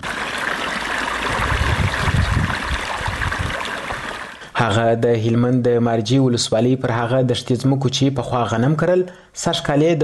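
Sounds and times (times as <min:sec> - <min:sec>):
water streaming and trickling while irrigating freshly planted poppy fields: 0:00.0 - 0:04.6
speech: 0:04.6 - 0:10.0.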